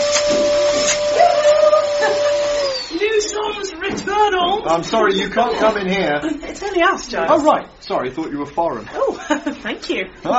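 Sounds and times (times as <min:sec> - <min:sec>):
vacuum cleaner running loudly: 0:00.0 - 0:04.8
speech: 0:04.6 - 0:10.3.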